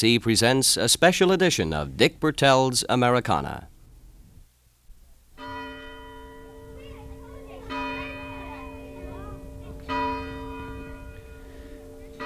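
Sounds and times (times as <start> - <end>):
speech: 0.0 - 3.7
meeting house church bell ringing to summon villagers to services: 5.4 - 12.2
faint voices of people and children murmuring: 6.6 - 12.2.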